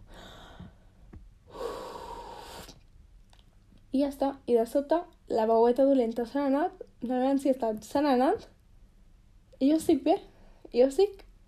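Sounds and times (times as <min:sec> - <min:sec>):
deep breathing in and out: 0:00.0 - 0:02.8
speech: 0:03.9 - 0:08.5, 0:09.6 - 0:11.4.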